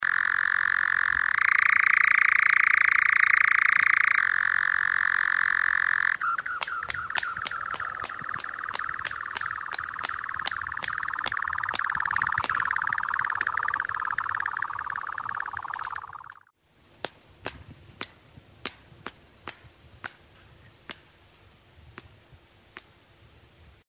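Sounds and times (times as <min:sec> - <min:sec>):
nightjar: 0:00.0 - 0:16.5.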